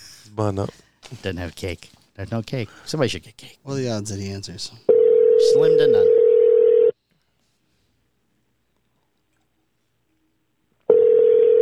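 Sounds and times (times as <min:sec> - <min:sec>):
speech: 0:00.3 - 0:06.2
ringback tone of an outgoing phone call: 0:04.9 - 0:06.9, 0:10.9 - 0:11.6.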